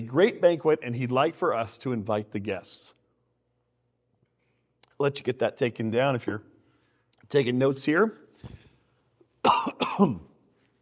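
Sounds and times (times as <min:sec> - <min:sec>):
speech: 0:00.0 - 0:03.0, 0:05.0 - 0:06.5, 0:07.3 - 0:08.6, 0:10.0 - 0:10.3
harsh throaty person coughing: 0:09.4 - 0:10.4.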